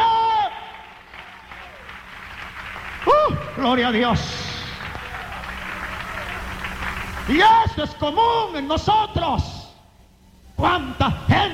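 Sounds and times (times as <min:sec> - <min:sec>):
congregation applauding in praise during a church service: 0:00.0 - 0:08.2
speech: 0:03.6 - 0:04.4, 0:07.3 - 0:09.6, 0:10.6 - 0:11.5.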